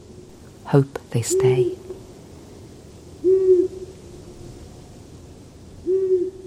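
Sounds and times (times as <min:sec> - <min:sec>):
speech: 0:00.7 - 0:01.8
long-eared owl hooting: 0:01.2 - 0:02.0, 0:03.2 - 0:04.0, 0:05.8 - 0:06.4.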